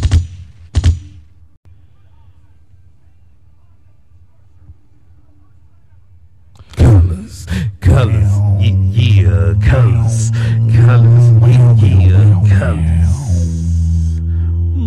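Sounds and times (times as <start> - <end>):
sharp loud gunshots: 0.0 - 1.2
low steady rumble: 6.8 - 14.8
speech: 7.9 - 8.4, 9.3 - 13.5.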